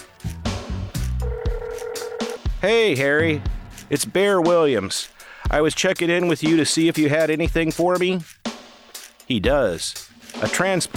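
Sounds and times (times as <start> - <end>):
mobile phone dialing beeps: 1.2 - 2.4
speech: 2.6 - 8.3, 9.3 - 10.9.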